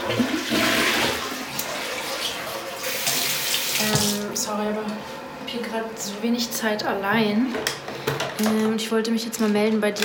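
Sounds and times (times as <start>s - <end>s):
toilet flushing: 0.0s - 4.4s
speech: 0.1s - 0.6s, 4.5s - 10.0s.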